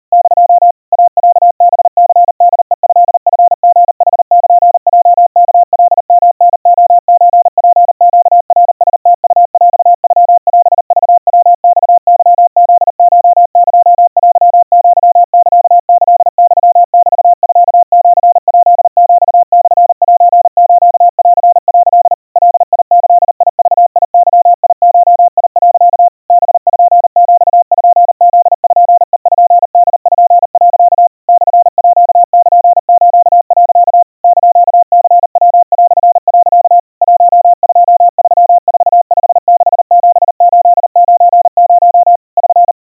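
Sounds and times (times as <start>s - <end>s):
700 Hz crispy Morse code tones at 130 cpm: 0.0s - 42.8s.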